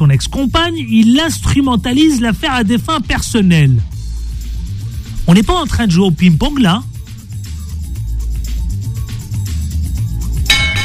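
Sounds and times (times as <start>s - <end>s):
low rumbling background: 0.0s - 10.8s
speech: 0.2s - 3.9s, 5.3s - 6.9s
faulty small studio bell ding: 10.5s - 10.8s.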